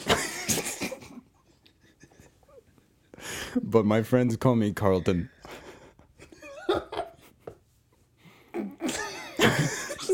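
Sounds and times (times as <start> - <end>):
sneezing: 0.0 - 1.0, 8.6 - 9.3
speech: 3.7 - 5.4.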